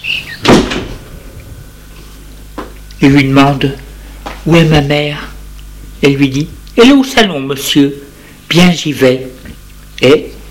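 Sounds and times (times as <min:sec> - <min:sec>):
door pulled shut by a maid at a house: 0:00.4 - 0:01.2
speech: 0:03.0 - 0:03.8, 0:04.4 - 0:05.3, 0:06.0 - 0:10.3.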